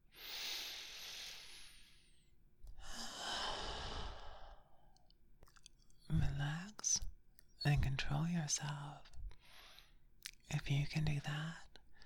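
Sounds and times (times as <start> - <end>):
deep breath: 0.1 - 4.9
speech: 7.6 - 9.1, 10.5 - 11.7.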